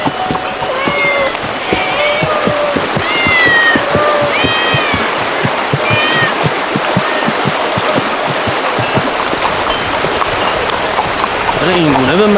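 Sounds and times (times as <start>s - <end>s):
several cats meowing in a town's temple: 0.0s - 6.4s
steady wash of running water or rain: 0.0s - 12.3s.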